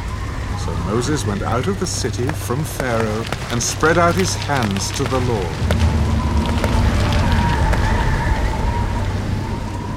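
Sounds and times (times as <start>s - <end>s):
deep rolling thunder rumble: 0.0s - 9.9s
steady rain hissing: 0.0s - 9.9s
speech: 0.7s - 5.9s.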